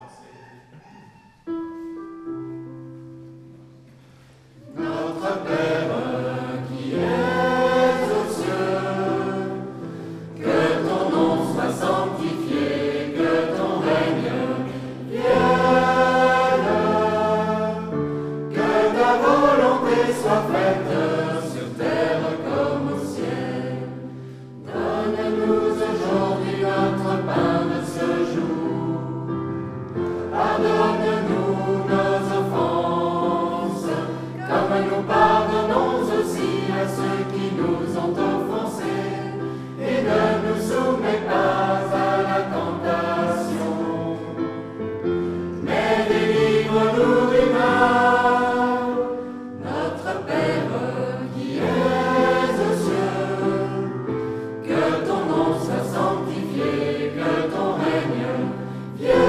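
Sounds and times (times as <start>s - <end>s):
schola choir chanting a prayer: 4.6s - 59.2s.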